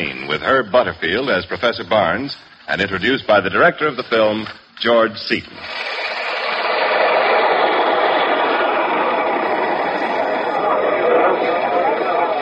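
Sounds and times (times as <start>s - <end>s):
speech: 0.0s - 6.0s
subway train rumbling: 6.7s - 12.4s
murmur of crowd noise: 8.8s - 12.4s.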